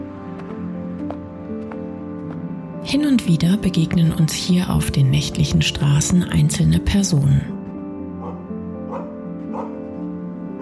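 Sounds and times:
speech: 2.9s - 7.5s
dog barking: 8.1s - 10.6s.

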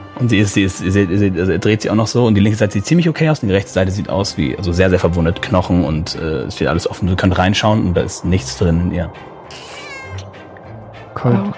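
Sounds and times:
speech: 0.2s - 9.7s, 11.2s - 11.5s
cat meowing: 9.5s - 10.4s.

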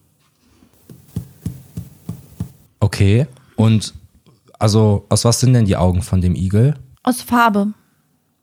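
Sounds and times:
potato knocked against a tabletop: 0.8s - 2.7s
speech: 3.0s - 4.0s, 4.6s - 7.8s.

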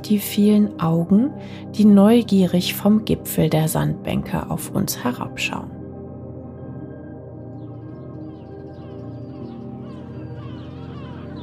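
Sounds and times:
speech: 0.0s - 5.8s
gulls calling at a breeding colony: 7.6s - 11.4s.

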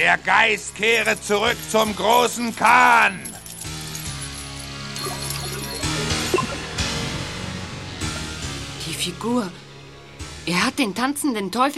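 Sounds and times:
speech: 0.0s - 3.3s, 9.0s - 9.6s, 10.4s - 11.7s
synthesizer effect with sustained stacked electronic tones: 5.0s - 8.6s.

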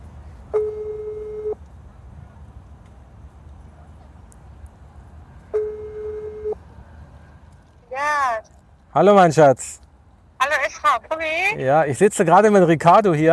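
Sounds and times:
low constant hum: 0.0s - 13.3s
outgoing telephone call ringback tone: 0.5s - 1.6s, 5.6s - 6.6s
speech: 9.0s - 9.8s, 11.2s - 13.3s.

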